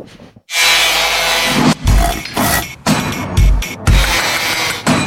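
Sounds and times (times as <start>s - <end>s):
harsh sawing-like noise: 0.5s - 2.7s, 3.8s - 4.9s
radio programme jingle of construction-style sound effects: 1.6s - 4.3s.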